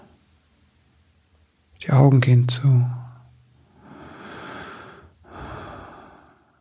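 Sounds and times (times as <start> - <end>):
speech: 1.8 - 3.0
deep slow breath with airy inhale and exhale: 3.6 - 6.6.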